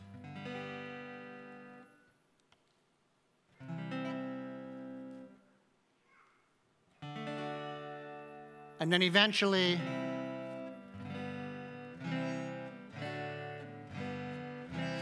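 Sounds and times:
sustained guitar chords strummed: 0.0s - 2.1s, 3.6s - 5.4s, 7.0s - 15.0s
speech: 8.8s - 10.0s.

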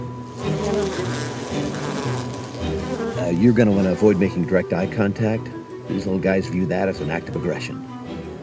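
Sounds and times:
honeybee colony buzzing during a hive inspection: 0.1s - 5.1s
speech: 3.3s - 7.9s.

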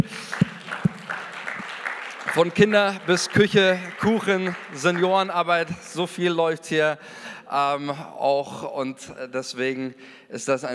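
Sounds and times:
audience applause: 0.0s - 6.4s
speech: 2.4s - 10.7s.

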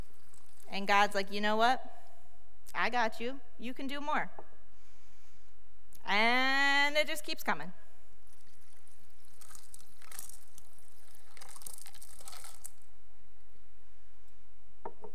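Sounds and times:
water poured into a glass: 0.0s - 0.8s, 8.3s - 12.8s
speech: 0.8s - 1.9s, 2.7s - 4.4s, 6.0s - 7.8s.

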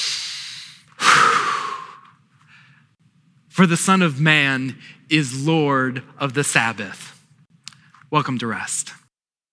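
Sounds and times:
church congregation taking a deep breath together during a sermon: 0.0s - 2.9s
speech: 3.6s - 7.2s, 8.1s - 9.0s.

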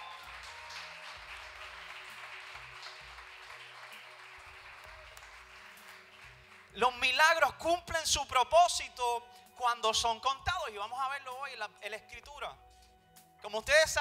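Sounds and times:
audience applauding: 0.0s - 7.2s
speech: 6.8s - 12.6s, 13.4s - 14.0s.

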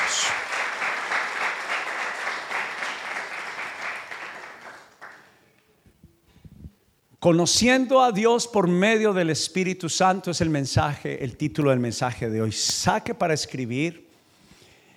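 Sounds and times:
audience applauding in a roomy space: 0.0s - 5.4s
speech: 7.2s - 14.0s.

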